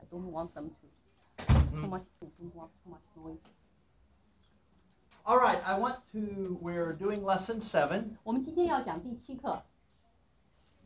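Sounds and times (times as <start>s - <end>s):
speech: 0.1s - 1.0s, 1.7s - 3.6s, 5.2s - 9.7s
door shutting: 1.4s - 1.8s.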